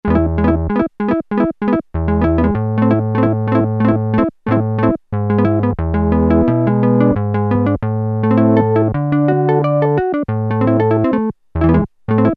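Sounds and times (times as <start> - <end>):
Korg PolySix synthesizer guitar tone: 0.0 - 12.3.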